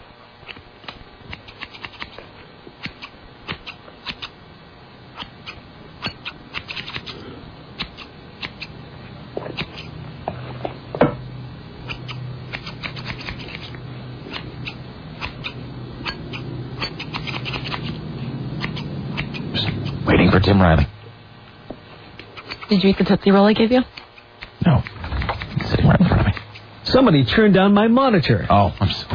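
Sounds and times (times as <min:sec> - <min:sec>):
scissors cutting: 0:00.4 - 0:02.2, 0:02.8 - 0:04.3, 0:05.2 - 0:07.2, 0:07.8 - 0:08.7, 0:09.6 - 0:09.9, 0:11.9 - 0:18.0, 0:18.6 - 0:20.0, 0:22.2 - 0:23.0, 0:23.9 - 0:26.7
speech: 0:20.5 - 0:20.9, 0:22.7 - 0:23.9, 0:27.0 - 0:28.9.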